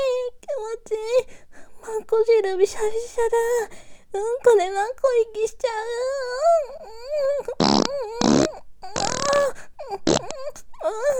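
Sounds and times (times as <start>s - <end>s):
speech: 2.1s - 11.1s
person whimpering or moaning in a high wavering voice: 6.4s - 11.1s
loud raspy farting: 7.5s - 10.6s.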